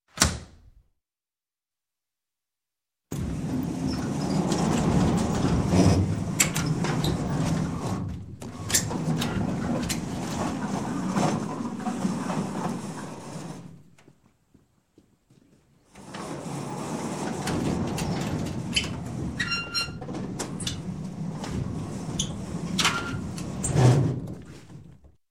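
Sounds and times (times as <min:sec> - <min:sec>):
large metal barn door closing: 0:03.2 - 0:13.7, 0:16.0 - 0:24.5.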